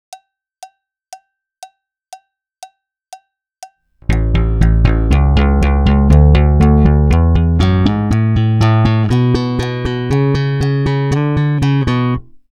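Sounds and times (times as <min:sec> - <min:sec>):
thumb-slapped bass practice phrase: 0:04.0 - 0:12.5.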